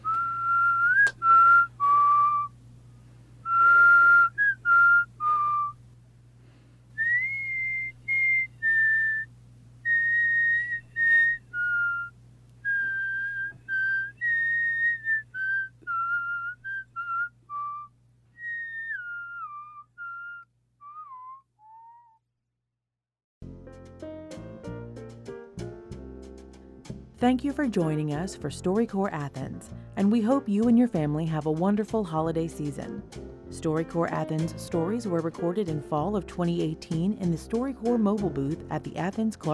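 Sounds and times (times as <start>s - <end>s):
person whistling the melody of a Christmas song: 0.0s - 2.5s, 3.4s - 5.8s, 7.0s - 9.3s, 9.9s - 22.2s
faint steady hum: 0.0s - 20.8s
music: 23.4s - 39.5s
speech: 27.2s - 39.5s.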